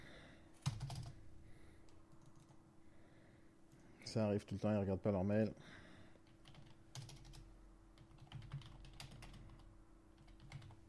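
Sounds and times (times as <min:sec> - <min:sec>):
typing on a computer keyboard while answering emails: 0:00.6 - 0:01.2, 0:02.1 - 0:02.6, 0:06.2 - 0:10.8
speech: 0:04.1 - 0:05.8.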